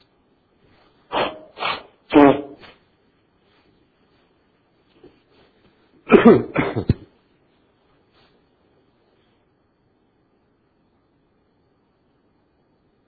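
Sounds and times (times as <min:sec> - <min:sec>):
person blowing their nose: 0:01.1 - 0:02.8.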